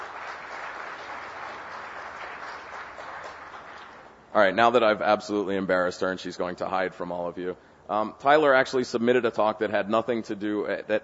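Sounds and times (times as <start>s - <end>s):
audience applause: 0.0s - 4.1s
speech: 4.4s - 11.0s.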